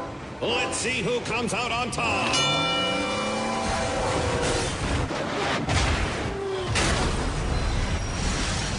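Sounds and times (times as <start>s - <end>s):
freight train horn blaring with sliding tones: 0.0s - 1.2s, 2.0s - 4.7s
heavy freight train roaring at a crossing: 0.0s - 5.2s
constant rumbling din of freight train: 0.0s - 8.7s
speech: 0.4s - 3.1s.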